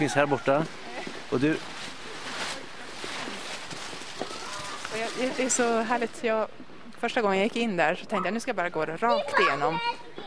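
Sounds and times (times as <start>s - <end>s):
speech: 0.0s - 1.7s, 5.0s - 10.0s
steady noisy indoor background: 0.0s - 10.2s
children's footsteps running among hanging thin plastic bands: 2.5s - 6.0s.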